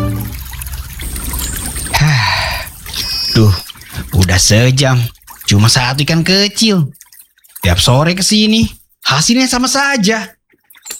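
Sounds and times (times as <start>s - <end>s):
river water flowing at a riverbank beside a village: 0.0s - 7.7s
water splash: 0.0s - 9.0s
speech: 3.4s - 3.6s, 4.4s - 7.0s, 7.6s - 10.4s.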